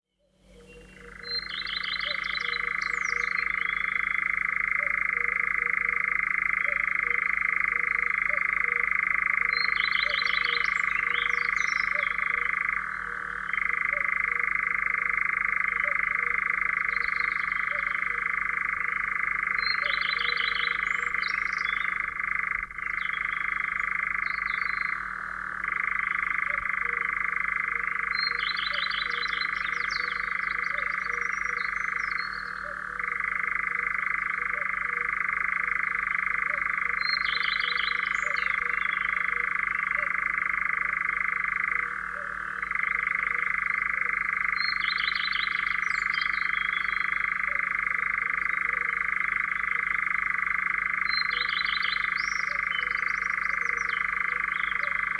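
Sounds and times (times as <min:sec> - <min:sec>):
birds: 0:00.2 - 0:55.1.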